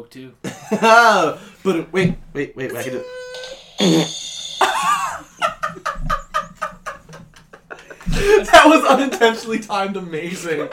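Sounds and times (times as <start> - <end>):
speech: 0.0 - 3.2, 3.8 - 4.3, 8.2 - 10.7
fart with buzzy blasts and sputtering pops: 2.8 - 4.6
laughter: 4.6 - 9.7.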